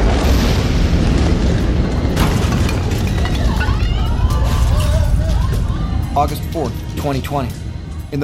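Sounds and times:
ammonium nitrate warehouse explosion roar: 0:00.0 - 0:05.3
crackling debris-like texture from warehouse explosion: 0:00.0 - 0:08.2
speech: 0:06.2 - 0:08.2.

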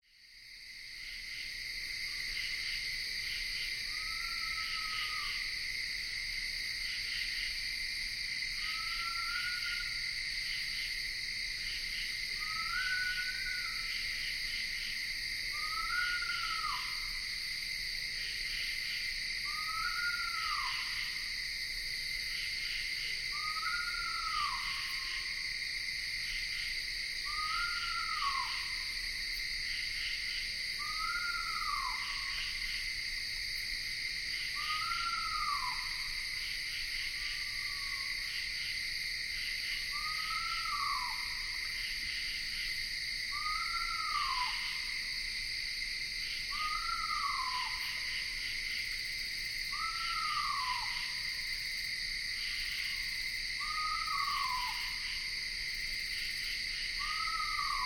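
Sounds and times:
insects in Ithaca New York: 0:00.0 - 0:57.8
screech owl calling in Ithaca New York: 0:03.9 - 0:05.4, 0:08.6 - 0:09.9, 0:12.4 - 0:13.9, 0:15.6 - 0:17.1, 0:19.4 - 0:21.0, 0:23.3 - 0:25.3, 0:27.2 - 0:28.9, 0:30.8 - 0:32.4, 0:34.5 - 0:36.0, 0:39.9 - 0:41.5, 0:43.3 - 0:44.9, 0:46.5 - 0:48.1, 0:49.7 - 0:51.1, 0:53.6 - 0:55.0, 0:57.0 - 0:57.8.

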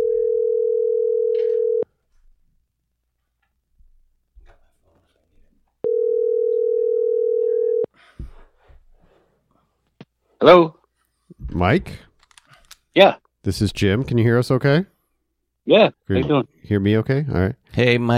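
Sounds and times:
telephone line tones while a call is dialed out: 0:00.0 - 0:01.8, 0:05.8 - 0:07.9
speech: 0:10.4 - 0:10.8, 0:11.6 - 0:12.1, 0:13.0 - 0:14.9, 0:15.7 - 0:18.1.

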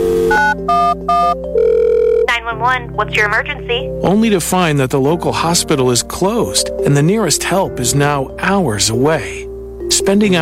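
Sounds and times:
telephone dialing tone beeps: 0:00.1 - 0:02.3
speech: 0:02.5 - 0:10.4.

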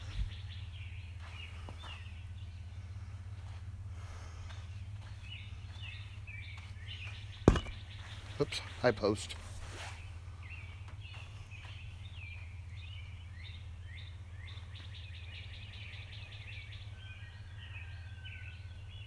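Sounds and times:
birds chirping outdoors: 0:00.0 - 0:19.0
sharp knocks: 0:07.4 - 0:07.9
speech: 0:08.4 - 0:09.5.

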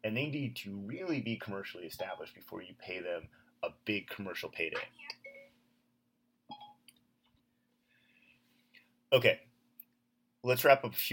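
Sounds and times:
speech: 0:00.1 - 0:05.2, 0:09.1 - 0:09.5, 0:10.4 - 0:11.1
phone voice assistant activation chime: 0:05.1 - 0:05.6, 0:06.5 - 0:06.8.

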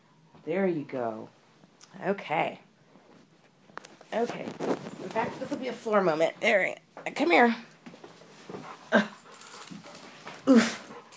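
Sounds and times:
speech: 0:00.4 - 0:02.7, 0:04.1 - 0:07.7, 0:08.9 - 0:09.1, 0:10.5 - 0:10.8
male black Labrador panting: 0:08.5 - 0:11.1.

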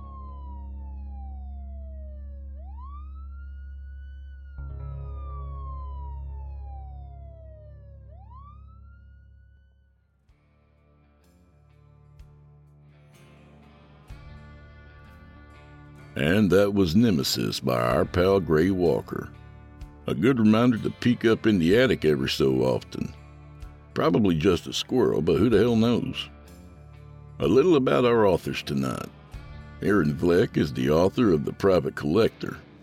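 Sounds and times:
siren wailing: 0:00.0 - 0:10.2
speech: 0:16.2 - 0:19.4, 0:20.0 - 0:23.2, 0:24.0 - 0:26.4, 0:27.4 - 0:29.2, 0:29.8 - 0:32.8.

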